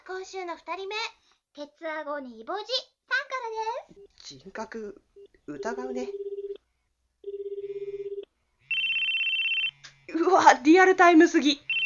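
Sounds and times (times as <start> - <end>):
speech: 0.1 - 6.2, 10.3 - 11.6
unanswered telephone call ringing tone: 5.2 - 6.6, 7.2 - 9.8, 11.6 - 11.8.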